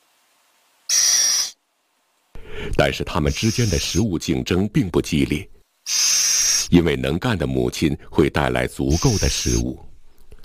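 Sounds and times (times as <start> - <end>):
little owl chick hissing call: 0.9 - 1.6, 3.2 - 4.0, 5.8 - 6.8, 8.9 - 9.7
speech: 2.6 - 6.0, 6.7 - 9.9.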